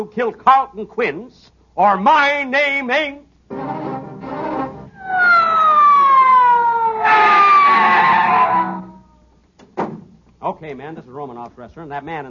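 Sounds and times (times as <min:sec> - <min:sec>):
speech: 0:00.0 - 0:04.0, 0:10.6 - 0:12.2
police squad car siren wailing: 0:04.9 - 0:09.1.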